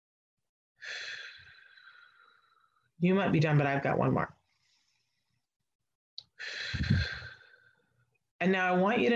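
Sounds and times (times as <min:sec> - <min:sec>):
slow deep breath during a guided breathing exercise: 0:00.8 - 0:02.9, 0:04.5 - 0:05.5, 0:06.3 - 0:08.0
speech: 0:03.0 - 0:04.4, 0:08.4 - 0:09.1.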